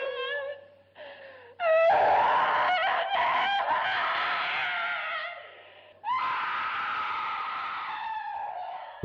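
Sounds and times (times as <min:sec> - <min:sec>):
woman screaming and wailing: 0:01.6 - 0:08.8.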